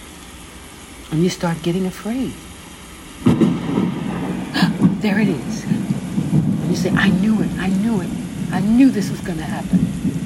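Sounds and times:
steady hiss of rain: 0.0 - 10.2
speech: 1.1 - 2.5, 5.0 - 10.2
low rumble of thunder during a rainstorm: 3.2 - 10.2.

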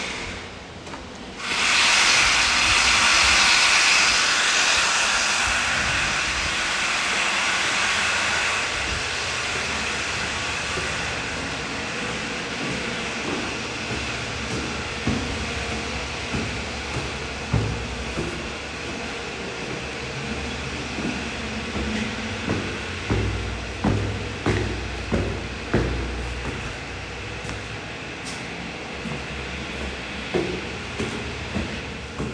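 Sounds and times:
steady machine rumble at a construction site: 0.0 - 32.3
loud bright hiss at a construction site: 1.4 - 26.6
sharp knocks and clanks at a construction site: 10.7 - 28.4, 29.0 - 32.3.

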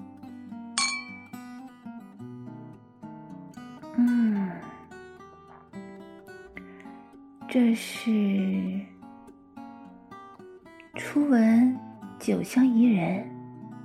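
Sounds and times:
soft steady music: 0.0 - 13.8
wine glasses clinking in a toast: 0.8 - 1.4
speech: 4.0 - 4.3, 7.5 - 8.9, 11.0 - 13.4.

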